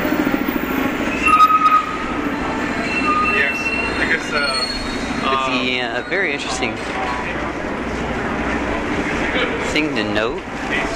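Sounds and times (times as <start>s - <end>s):
heavy city bus traffic rumbling on a street: 0.0s - 10.9s
brief higher squeals of passing buses: 0.6s - 6.6s
speech: 5.6s - 7.2s, 9.8s - 10.9s.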